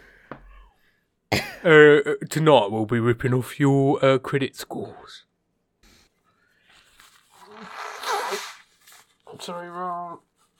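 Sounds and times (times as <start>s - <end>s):
speech: 1.3s - 5.3s, 9.3s - 10.3s
person blowing their nose: 7.2s - 9.1s.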